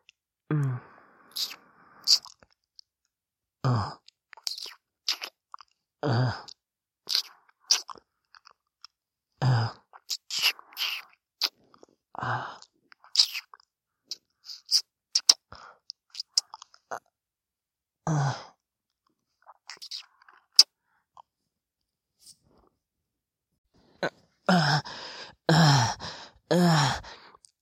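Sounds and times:
soft breathy sighs: 0.5s - 2.1s, 12.2s - 12.7s, 18.1s - 18.6s, 24.0s - 27.4s
wet mouth noises squelching and clicking: 1.3s - 2.5s, 4.4s - 5.7s, 6.4s - 8.6s, 9.9s - 11.8s, 12.6s - 16.8s, 19.5s - 20.7s.

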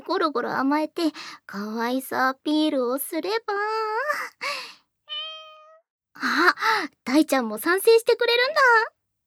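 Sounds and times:
speech: 0.1s - 4.6s, 6.2s - 9.0s
woman imitating a cat meow: 5.1s - 5.8s.

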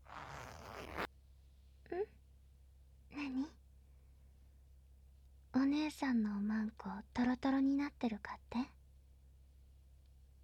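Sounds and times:
zipper being pulled down: 0.0s - 1.1s
speech: 5.9s - 8.8s.

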